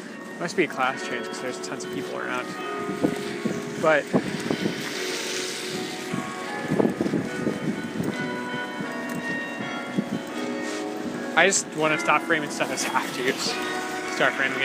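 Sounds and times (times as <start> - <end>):
bell tower bells ringing: 0.0 - 14.6
speech: 0.4 - 4.4, 11.4 - 14.6
steady wind noise: 2.6 - 11.3.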